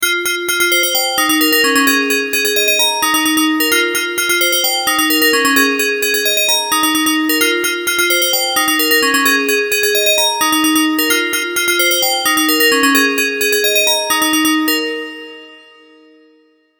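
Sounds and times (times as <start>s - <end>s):
80s bell: 0.0s - 16.7s.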